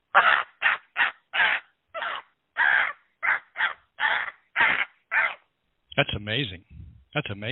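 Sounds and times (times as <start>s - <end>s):
person imitating crow caws: 0.1s - 5.4s
speech: 6.0s - 7.5s.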